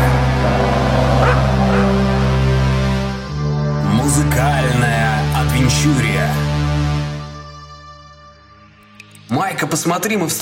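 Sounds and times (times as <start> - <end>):
steady droning music: 0.0 - 10.4
dog barking in short yips: 1.2 - 2.0
speech: 9.6 - 10.4.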